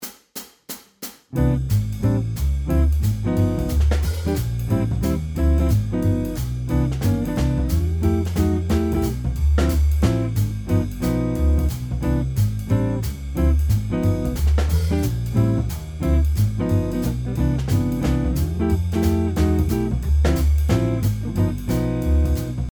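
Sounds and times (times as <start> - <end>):
jazz backing on guitar: 1.3 - 22.7.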